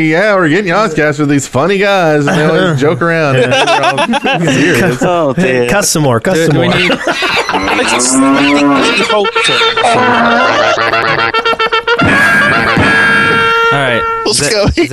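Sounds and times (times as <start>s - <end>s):
speech: 0.0s - 11.4s, 13.7s - 14.9s
laughter: 2.2s - 5.8s, 6.4s - 13.5s
loud drawn-out cow moo: 7.6s - 11.3s
bright brassy cavalry-charge fanfare: 7.6s - 14.5s.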